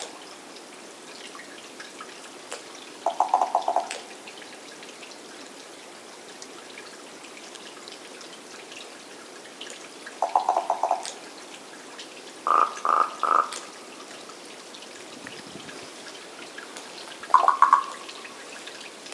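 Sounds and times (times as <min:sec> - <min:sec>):
Common raven Corvus corax calling with hollow knocks and bell-like notes: 0:03.0 - 0:04.0, 0:10.2 - 0:11.1, 0:12.4 - 0:13.7, 0:17.3 - 0:18.3.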